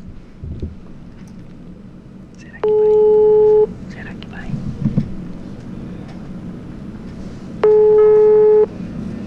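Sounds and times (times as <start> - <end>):
faint murmuring over a low noisy background: 2.2 - 7.6
telephone ringback tone: 2.6 - 3.7, 7.6 - 8.7.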